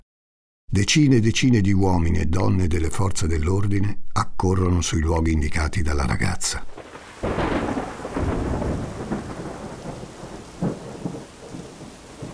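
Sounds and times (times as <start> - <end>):
speech: 0.7 - 7.6
deep rumbles of thunder rolling: 6.7 - 12.3
heavy rain pouring in a dense hissing wash: 6.7 - 12.3.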